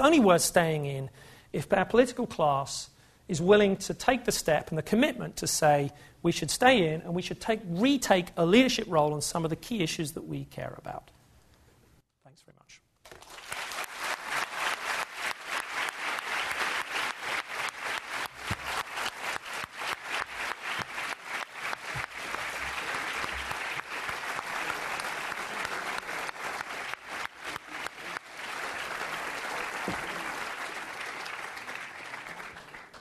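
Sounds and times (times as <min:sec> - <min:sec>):
speech: 0:00.0 - 0:11.2
audience applause after a lecture: 0:13.1 - 0:32.9.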